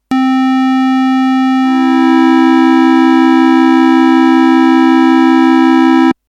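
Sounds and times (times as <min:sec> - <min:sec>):
grosse terz harmonie organ tone: 0:00.1 - 0:06.2.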